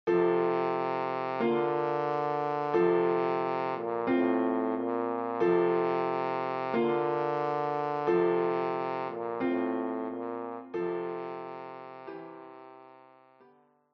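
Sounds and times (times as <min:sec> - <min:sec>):
horn melody: 0:00.1 - 0:13.5.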